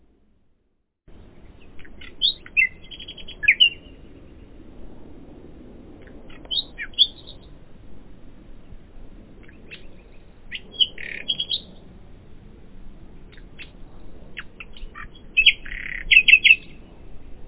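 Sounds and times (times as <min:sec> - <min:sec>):
common nightingale singing: 0:01.4 - 0:04.3, 0:06.0 - 0:07.6, 0:09.4 - 0:11.8, 0:13.3 - 0:13.8, 0:14.4 - 0:16.8.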